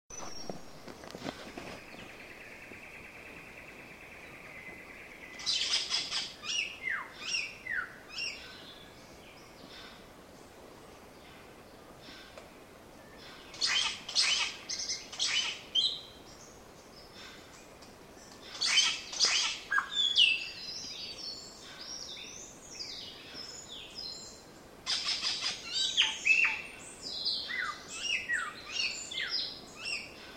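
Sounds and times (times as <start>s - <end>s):
Scenopoeetes dentirostris tooth-billed bowerbird: 1.3s - 9.0s, 13.0s - 16.2s, 18.3s - 30.3s.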